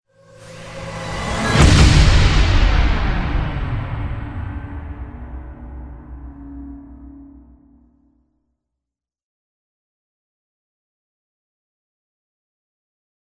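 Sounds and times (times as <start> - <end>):
short suspense accent: 0.2 - 8.2.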